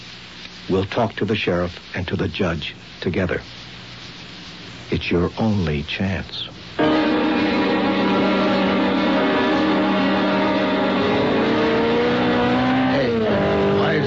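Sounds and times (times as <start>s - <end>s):
speech: 0.7s - 3.6s, 4.9s - 7.0s
sports car engine roaring at high revs speeding past: 8.0s - 14.0s.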